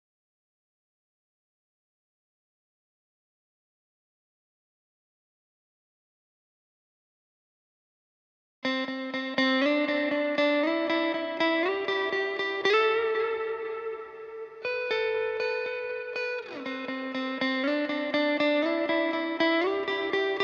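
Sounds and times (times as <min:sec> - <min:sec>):
120 BPM A minor backing guitar loop: 0:08.6 - 0:20.4.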